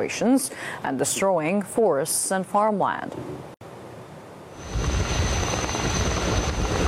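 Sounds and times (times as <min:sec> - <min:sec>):
speech: 0:00.0 - 0:03.6
thin high whine of helicopter: 0:04.5 - 0:06.8
firefighting helicopter flying overhead: 0:04.6 - 0:06.8.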